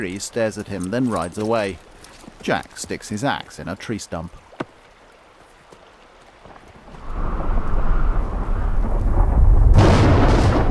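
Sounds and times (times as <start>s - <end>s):
speech: 0.0s - 4.4s
thunder as an evening storm breaks over a campsite: 7.0s - 10.6s.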